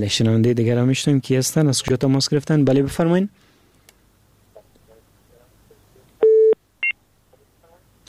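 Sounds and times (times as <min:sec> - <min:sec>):
speech: 0:00.0 - 0:03.4
phone line tone after caller disconnects: 0:06.2 - 0:06.6.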